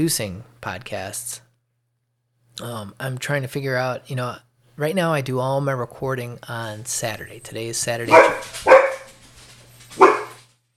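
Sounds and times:
speech: 0:00.0 - 0:01.4, 0:02.6 - 0:08.8
faint low hum: 0:00.0 - 0:10.7
pet dog barking in a home office: 0:08.1 - 0:09.2, 0:10.0 - 0:10.4.

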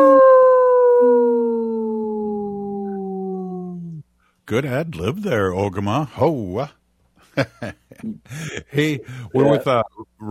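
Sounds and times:
person imitating a wolf howl: 0:00.0 - 0:04.0, 0:09.4 - 0:09.7
second, lower howling voice: 0:00.0 - 0:04.0, 0:08.9 - 0:10.0
speech: 0:04.5 - 0:06.8, 0:07.4 - 0:10.3
laughter: 0:07.3 - 0:09.8.

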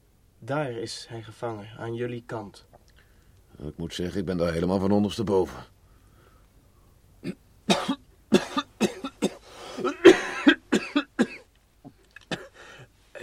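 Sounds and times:
speech: 0:00.4 - 0:02.8, 0:03.6 - 0:05.7
man coughing: 0:07.2 - 0:11.5, 0:12.3 - 0:13.2
man clearing throat: 0:07.2 - 0:12.6.

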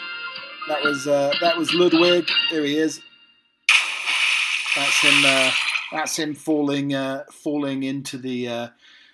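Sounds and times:
speech: 0:00.7 - 0:03.1, 0:04.8 - 0:08.9
splash of a person falling into water: 0:03.7 - 0:06.0.

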